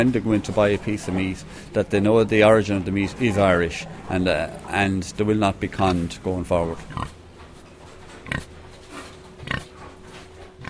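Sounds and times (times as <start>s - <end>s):
boar grunting with low snorting bursts: 0.0s - 7.2s, 8.2s - 10.6s
speech: 0.0s - 7.2s
faint barn noise: 0.0s - 10.6s.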